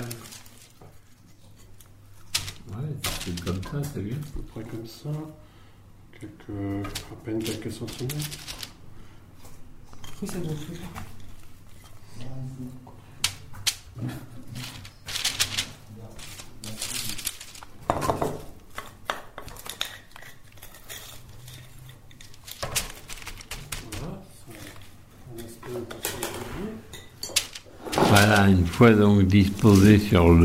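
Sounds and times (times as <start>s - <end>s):
speech: 3.3s - 5.5s, 6.2s - 8.6s, 10.2s - 11.1s, 12.2s - 13.0s, 14.0s - 14.8s, 28.3s - 30.4s
taps of small dough patties set on parchment paper: 17.8s - 19.6s.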